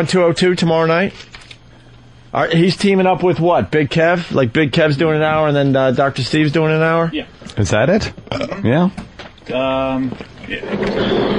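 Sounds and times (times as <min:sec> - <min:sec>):
speech: 0:00.0 - 0:01.3, 0:02.3 - 0:11.3
office chair wheels rolling across a wooden floor: 0:10.5 - 0:11.3.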